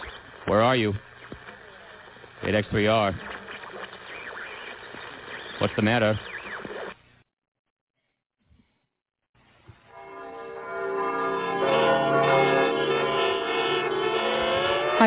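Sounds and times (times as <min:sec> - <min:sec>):
speech: 0:00.5 - 0:01.1, 0:02.4 - 0:03.3, 0:05.6 - 0:06.3
bells ringing as an evacuation warning: 0:09.9 - 0:15.0.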